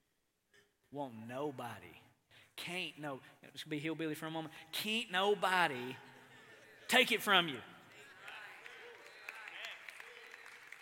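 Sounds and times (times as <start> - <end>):
speech: 0.9 - 6.1, 6.9 - 7.7
laughter: 5.8 - 10.4
audience applauding: 7.9 - 10.8.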